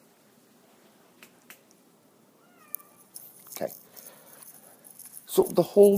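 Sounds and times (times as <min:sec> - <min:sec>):
steady hiss: 0:00.0 - 0:05.9
cat meowing outdoors: 0:02.4 - 0:03.2
speech: 0:03.6 - 0:03.9, 0:05.4 - 0:05.9.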